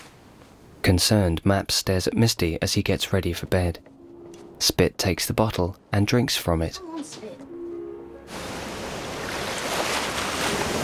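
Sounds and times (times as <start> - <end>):
speech: 0.8 - 3.9, 4.6 - 7.3
frothy waves lapping over craggy rocks along a shoreline in the early morning: 8.3 - 10.8.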